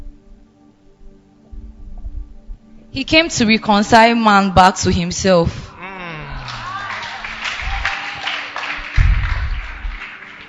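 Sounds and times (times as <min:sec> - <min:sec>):
low rumbling thuds: 0:01.5 - 0:02.7, 0:09.0 - 0:10.0
speech: 0:02.9 - 0:05.6
crowd clapping in a large room: 0:06.4 - 0:10.4.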